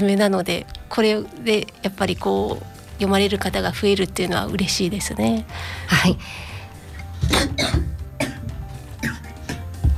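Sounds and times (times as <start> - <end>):
speech: 0.0 - 6.5
throaty rasping: 0.6 - 9.9
coughing fit with harsh rough coughs: 7.2 - 9.7.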